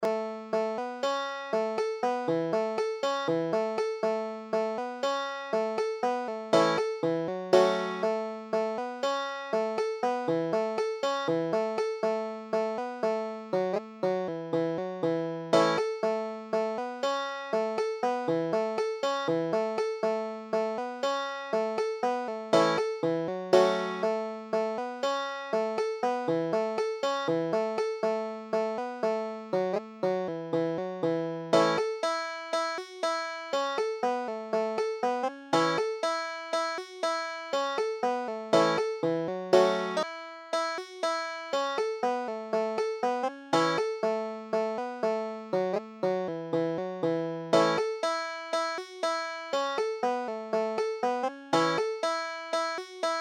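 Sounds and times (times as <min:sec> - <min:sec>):
banjo tune: 0:00.0 - 0:53.2.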